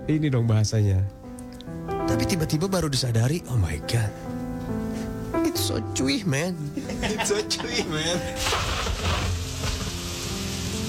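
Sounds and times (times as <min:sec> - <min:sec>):
speech: 0:00.1 - 0:04.8, 0:05.6 - 0:09.3
laughter: 0:06.7 - 0:08.4
rain spattering on a hard surface: 0:08.4 - 0:10.8.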